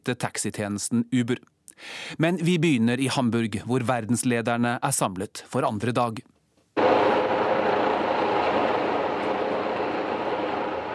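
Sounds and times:
speech: 0.0s - 6.9s
patrolling helicopter flying overhead at night in Hamburg: 6.8s - 10.9s.

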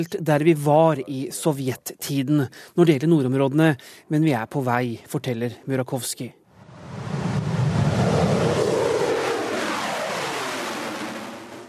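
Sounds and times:
speech: 0.0s - 6.4s
MiG-35 fighter jet flying past: 6.6s - 11.6s.

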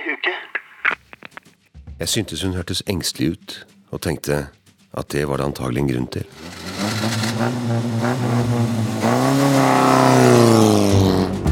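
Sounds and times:
speech: 2.0s - 6.6s, 7.4s - 11.1s
car pulling away under heavy acceleration, engine revving hard: 6.2s - 11.4s.

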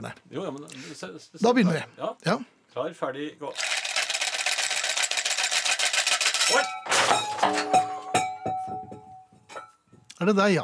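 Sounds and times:
speech: 0.0s - 3.8s, 6.5s - 7.9s, 10.2s - 10.6s
small rattles: 3.6s - 7.4s
coins clinking: 3.6s - 7.8s
pot full of coins crashing on the ground: 6.4s - 9.8s.

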